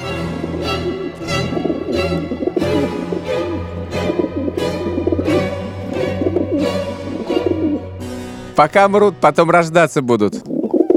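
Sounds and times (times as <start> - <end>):
pigeons cooing: 0.0 - 8.0, 10.4 - 10.9
speech: 8.6 - 10.5.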